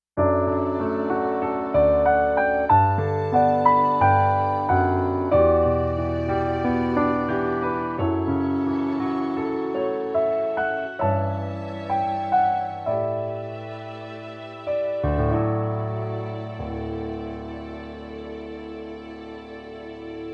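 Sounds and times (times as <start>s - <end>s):
piano: 0.1s - 20.3s
slow strings: 0.2s - 20.3s.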